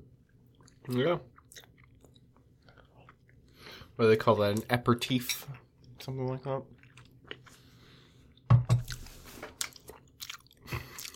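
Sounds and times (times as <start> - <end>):
loud wet open-mouthed chewing of food: 0.2 - 3.8, 5.8 - 11.1
speech: 0.8 - 1.7, 4.0 - 6.8.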